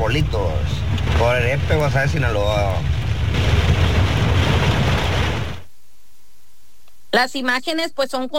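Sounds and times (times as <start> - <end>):
speech: 0.0 - 3.6, 7.1 - 8.3
rushing floodwater covering a street during heavy rain in El Epe, Guasave, Sinaloa, Mexico: 0.0 - 5.6.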